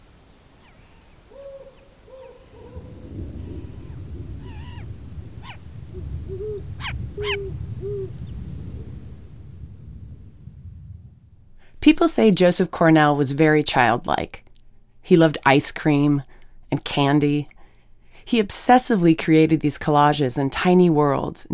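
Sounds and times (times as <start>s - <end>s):
owl hooting: 0.6s - 8.4s
speech: 11.8s - 14.4s, 15.1s - 17.5s, 18.3s - 21.5s.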